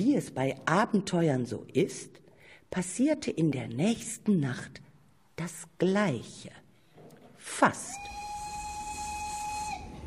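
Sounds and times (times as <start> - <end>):
speech: 0.0 - 4.8, 5.4 - 6.6, 7.5 - 8.2
steam train whistle: 7.9 - 10.0
steam train wheels rolling and rumbling: 8.2 - 10.0.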